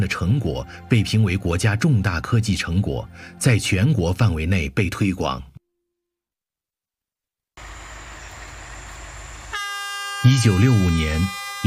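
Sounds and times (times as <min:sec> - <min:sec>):
speech: 0:00.1 - 0:05.5, 0:10.2 - 0:11.6
multi-toned train horn blasting: 0:09.5 - 0:11.6.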